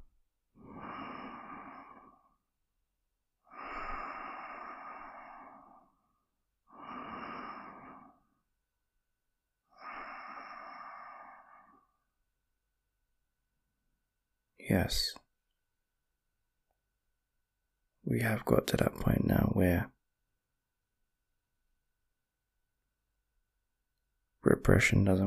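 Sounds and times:
deep breathing: 0.6 - 2.5, 3.4 - 8.5, 9.7 - 12.1
speech: 14.6 - 15.2, 18.1 - 20.0, 24.7 - 25.2.

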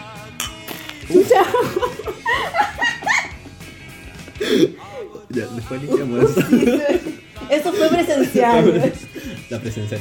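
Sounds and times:
glasses of michelada clinking in a toast: 0.4 - 1.0
speech: 1.1 - 2.9, 4.5 - 9.9
laughter: 1.1 - 3.7, 4.3 - 9.5.

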